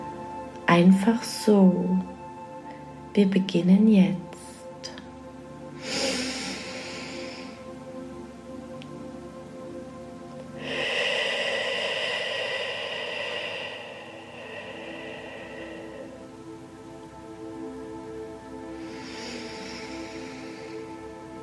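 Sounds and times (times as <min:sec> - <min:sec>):
speech: 0:00.7 - 0:02.2, 0:03.2 - 0:04.3
long slow breathy exhale through an open mouth: 0:05.8 - 0:07.8, 0:10.6 - 0:16.6, 0:18.7 - 0:21.4
short airy inhale: 0:10.6 - 0:16.2, 0:18.8 - 0:21.0.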